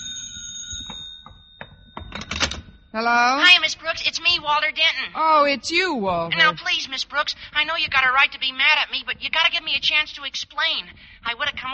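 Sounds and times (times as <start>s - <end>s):
telephone bell ringing: 0.0s - 3.5s
speech: 2.9s - 11.7s.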